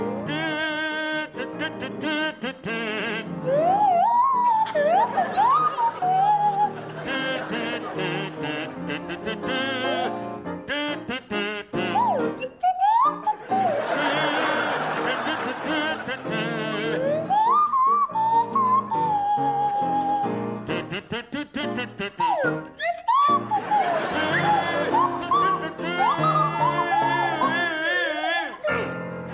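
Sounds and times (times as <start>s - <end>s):
buzzy kazoo playing a jaunty tune: 0.2s - 29.1s
audience laughing loudly: 4.4s - 10.1s, 13.3s - 17.2s, 23.5s - 28.8s.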